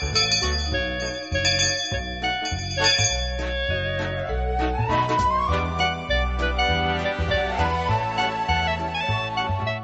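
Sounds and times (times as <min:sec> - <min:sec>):
school class bell melodic chime tune: 0:00.0 - 0:04.3
steady bass accompaniment: 0:00.0 - 0:09.8.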